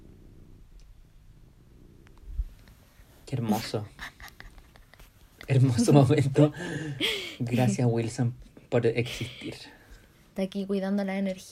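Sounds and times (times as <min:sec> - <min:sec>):
cat purring: 0:00.0 - 0:06.5
speech: 0:03.3 - 0:04.1, 0:05.5 - 0:09.8, 0:10.4 - 0:11.5.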